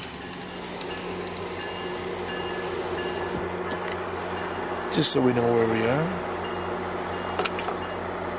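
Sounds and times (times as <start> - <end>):
commuter train rumbling past outdoors: 0.0 - 8.3
speech: 5.0 - 6.3.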